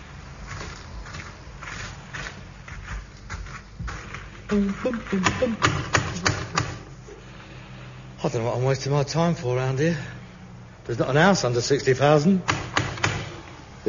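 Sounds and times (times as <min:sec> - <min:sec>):
horse hooves clip-clopping: 0:00.0 - 0:05.4
speech: 0:04.5 - 0:06.0, 0:08.2 - 0:10.2, 0:10.9 - 0:12.6.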